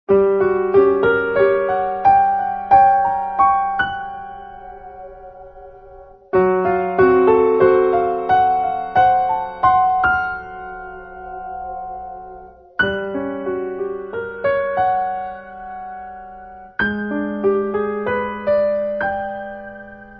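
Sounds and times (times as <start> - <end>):
tense piano: 0.1 - 20.1.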